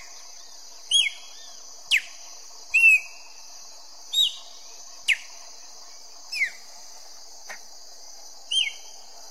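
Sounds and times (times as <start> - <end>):
Chopi blackbird singing: 0.0 - 5.6, 6.3 - 6.7, 8.5 - 9.0
shrill insect noise: 0.0 - 9.2.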